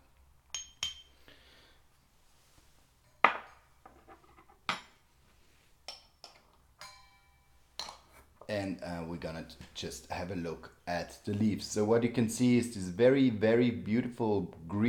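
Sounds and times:
spoon clinking against a container while scooping matcha green tea powder: 0.5 - 1.2, 5.9 - 8.2
speech: 8.5 - 14.8.

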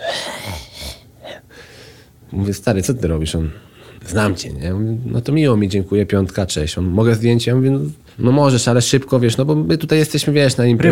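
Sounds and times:
voice imitating heavy panting breathing: 0.0 - 1.5
speech: 2.3 - 10.8.

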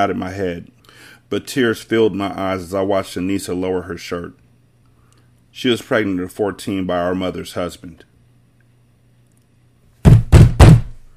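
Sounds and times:
speech: 0.0 - 4.4, 5.5 - 8.1
heavy knocks by a mother on a door: 10.0 - 11.0.

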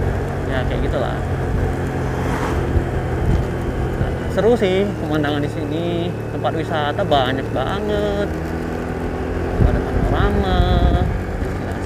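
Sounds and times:
wind buffeting microphone: 0.0 - 4.8, 9.3 - 11.8
motorcycle engine ridden along a hill road in cold weather: 0.0 - 11.8
speech: 0.5 - 2.0, 4.4 - 8.6, 9.6 - 11.2.

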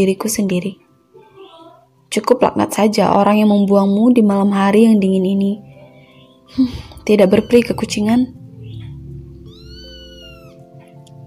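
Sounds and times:
speech: 0.0 - 0.9, 2.1 - 5.7, 6.5 - 8.4
steady low hum: 6.5 - 10.5
abandoned kitten meowing on a cold night: 6.6 - 10.7.

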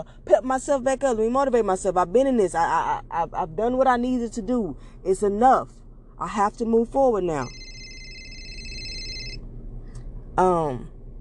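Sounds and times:
speech: 0.0 - 7.6, 10.4 - 10.9
mobile phone electronic ringing tone: 7.4 - 9.4.

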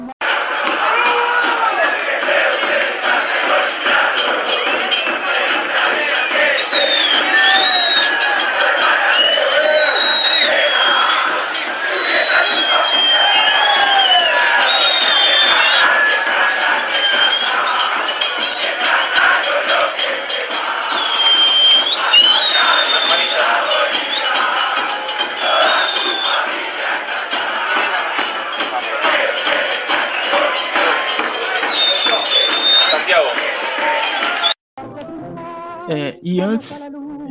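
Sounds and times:
football supporters chanting a terrace chant entering the ground: 0.0 - 34.6
whistles: 6.2 - 19.5, 20.8 - 26.6, 29.5 - 33.2, 33.8 - 34.6.

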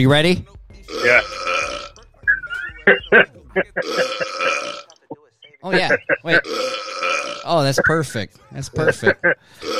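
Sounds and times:
speech: 0.0 - 1.5, 2.9 - 4.8, 5.6 - 9.7
long rumbling belch from a soundboard button: 0.9 - 1.9, 3.8 - 4.8, 6.4 - 7.5
croaking burps from a soundboard button: 0.9 - 2.0, 2.8 - 4.9, 5.7 - 7.9, 8.8 - 9.7.

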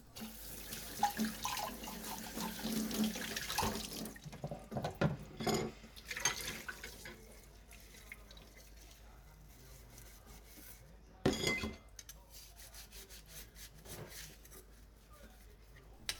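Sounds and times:
water splashing and dripping: 0.2 - 4.3
water running from a tap into a sink: 0.2 - 5.2
dishes clinking as washed: 4.4 - 7.2, 11.2 - 11.9.

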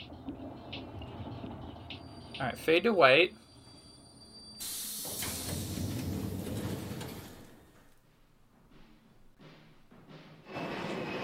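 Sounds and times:
train rumbling along tracks: 0.0 - 7.9, 9.4 - 11.2
speech: 2.4 - 3.4.

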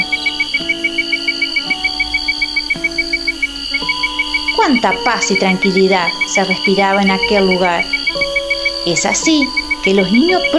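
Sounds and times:
crickets chirping at night: 0.0 - 10.5
soft humming drone: 0.0 - 10.5
speech: 4.8 - 8.0, 8.8 - 10.5.

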